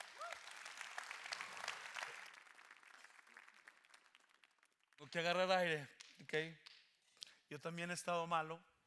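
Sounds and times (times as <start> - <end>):
audience applauding: 0.0 - 5.1
speech: 5.0 - 6.7, 7.5 - 8.7.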